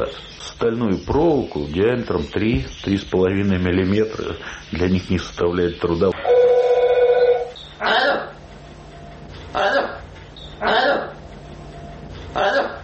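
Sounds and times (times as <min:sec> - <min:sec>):
speech: 0:00.0 - 0:06.2
parrot making raspy voice-like calls: 0:05.8 - 0:08.4, 0:09.5 - 0:11.2, 0:12.3 - 0:12.8
telephone ringing: 0:06.2 - 0:07.6.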